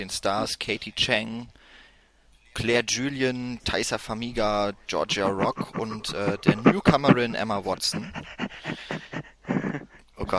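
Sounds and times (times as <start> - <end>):
speech: 0.0 - 1.7, 2.6 - 8.9
laughter: 5.1 - 10.0
dog panting: 5.1 - 10.3.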